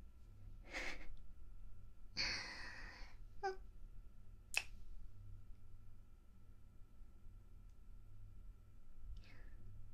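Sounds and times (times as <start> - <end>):
faint steady hum: 0.0 - 9.9
crisp kissing smacks close to the ear: 4.5 - 4.8.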